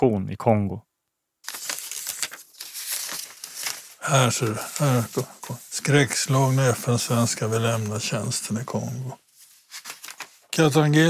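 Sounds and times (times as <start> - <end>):
speech: 0.0 - 0.9, 4.1 - 9.2, 10.6 - 11.0
newspaper clipping sheets rustling and crinkling: 1.4 - 11.0.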